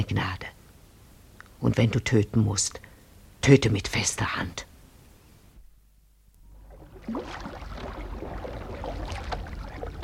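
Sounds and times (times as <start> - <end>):
speech: 0.1 - 0.5, 1.6 - 4.7
water splashing as a light canoe is pushed into a river: 6.4 - 10.0.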